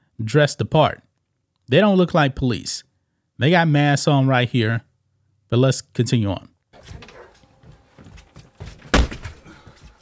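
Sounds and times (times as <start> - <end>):
speech: 0.2 - 1.1, 1.7 - 4.9, 5.5 - 7.1
door scraping and rattling: 6.8 - 9.4
door being forced: 6.8 - 9.7
dull thumps on door: 8.0 - 9.5
loud door bang: 8.8 - 9.5.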